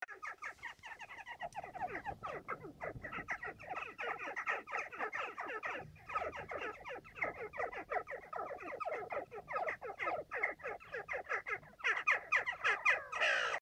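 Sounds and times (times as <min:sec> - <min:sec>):
jackdaw calling: 0:00.0 - 0:13.5.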